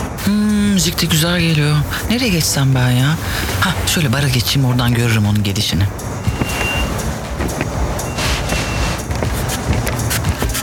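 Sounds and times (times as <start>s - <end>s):
continuous low drone of stalled vehicles: 0.0s - 10.6s
engines idling in a road traffic jam: 0.0s - 10.6s
speech: 0.3s - 6.2s
horn-like tones: 5.9s - 9.6s
faint reversing beep: 6.2s - 7.0s, 8.0s - 9.0s.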